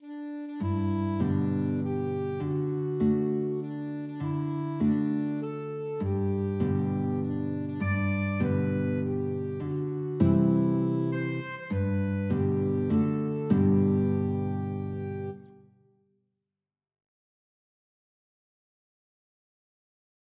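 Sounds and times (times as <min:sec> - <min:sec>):
alto saxophone in a duet: 0:00.0 - 0:15.6
guitar in a duet: 0:00.0 - 0:15.8.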